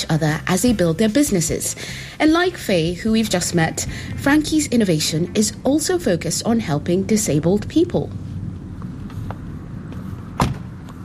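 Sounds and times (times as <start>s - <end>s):
speech: 0.0s - 8.3s
steady low outdoor rumble: 0.0s - 11.0s
faint clicks and shuffles: 8.1s - 11.0s
car door slamming shut: 10.3s - 10.8s.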